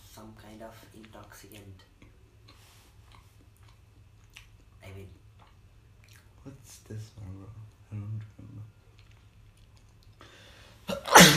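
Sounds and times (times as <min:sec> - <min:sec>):
speech: 0:00.6 - 0:02.0, 0:04.8 - 0:05.2, 0:06.4 - 0:08.8
person sneezing: 0:10.9 - 0:11.3.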